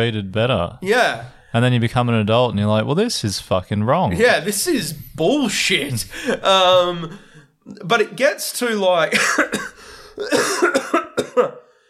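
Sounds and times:
speech: 0.0s - 11.6s
harsh phlegmy smoker's cough: 9.1s - 11.7s.

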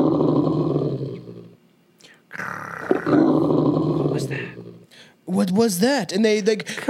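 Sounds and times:
person imitating an animal's deep rough growl: 0.0s - 1.6s, 2.3s - 4.8s
speech: 5.3s - 6.8s.

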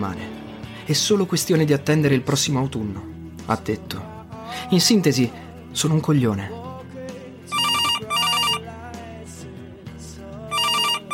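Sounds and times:
speech: 0.0s - 6.6s
steady low musical background: 0.0s - 11.1s
telephone ringing in loud electronic bursts: 7.5s - 8.6s, 10.5s - 11.1s.

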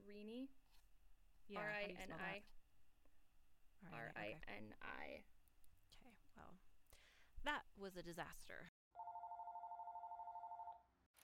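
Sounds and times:
speech: 0.0s - 0.6s, 1.5s - 2.6s, 3.8s - 5.3s, 5.9s - 6.7s, 7.4s - 8.7s
warbling electronic telephone ring: 9.0s - 10.8s.

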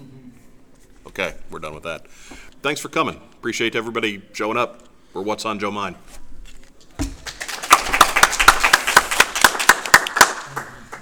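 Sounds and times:
speech: 1.2s - 6.2s
audience hand clapping: 7.1s - 11.0s.

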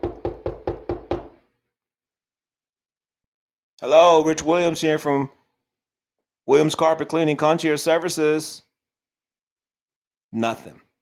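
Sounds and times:
knocking on a wooden door: 0.0s - 1.4s
speech: 3.8s - 5.4s, 6.5s - 8.7s, 10.3s - 10.8s.

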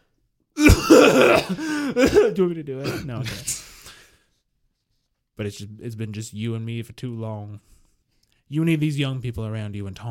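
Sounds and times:
man clearing his throat aggressively: 0.6s - 3.7s
speech: 1.2s - 3.6s, 5.4s - 7.8s, 8.5s - 10.0s.

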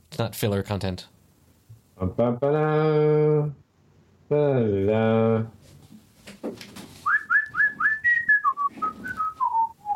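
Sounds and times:
speech: 0.2s - 1.2s, 2.0s - 3.6s, 4.3s - 5.8s
person whistling a short bouncy tune: 7.0s - 9.9s.

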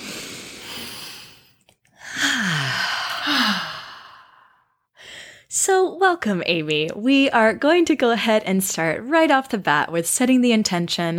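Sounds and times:
deep breathing during a guided breathing exercise: 0.0s - 5.5s
speech: 6.0s - 11.1s.

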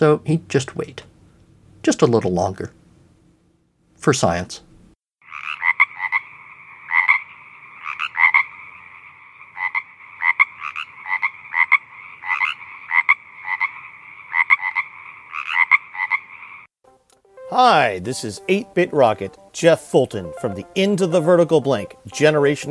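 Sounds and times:
speech: 0.0s - 1.1s, 1.8s - 2.8s, 4.0s - 4.6s, 17.6s - 22.6s
frog croaking in rasping calls: 5.2s - 16.7s.

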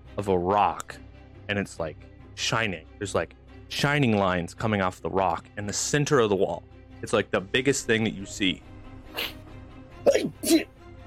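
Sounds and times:
speech: 0.2s - 9.4s
person acting out a sneeze with their voice: 9.1s - 9.4s, 10.1s - 10.7s.

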